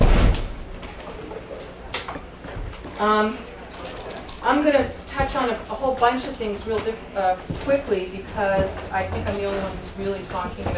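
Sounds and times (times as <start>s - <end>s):
door shutting with a low thump: 0.0s - 0.6s
speech: 3.0s - 3.5s, 4.4s - 10.7s.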